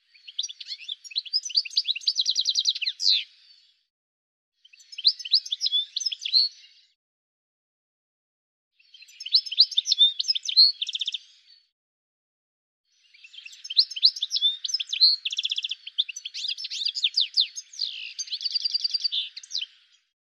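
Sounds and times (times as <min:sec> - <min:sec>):
bird chirps: 0:00.0 - 0:03.7, 0:04.6 - 0:06.9, 0:08.8 - 0:11.7, 0:12.9 - 0:20.1.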